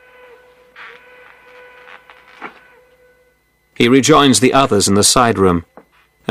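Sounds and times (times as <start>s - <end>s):
train whistle: 0.0s - 3.4s
speech: 3.8s - 5.7s.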